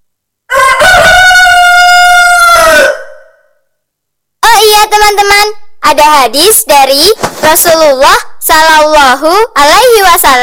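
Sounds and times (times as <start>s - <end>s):
rooster crowing: 0.5s - 3.6s
speech: 5.0s - 10.4s.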